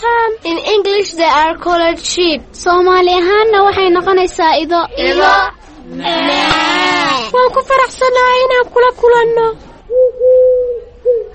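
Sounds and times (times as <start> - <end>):
speech: 0.8 - 6.6, 7.3 - 9.7
dove cooing: 9.9 - 11.3.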